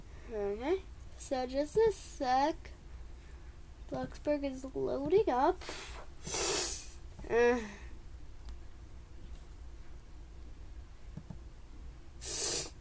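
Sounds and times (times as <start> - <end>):
speech: 0.3 - 2.8, 3.9 - 6.4, 7.3 - 7.8
person sniffing: 5.6 - 7.0, 12.2 - 12.7.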